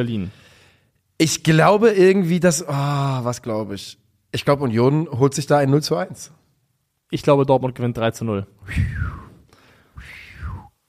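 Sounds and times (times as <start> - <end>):
speech: 0.0 - 0.4, 1.2 - 6.4, 7.1 - 9.2
breathy failed attempts at a whistle: 8.7 - 9.4, 10.0 - 10.7.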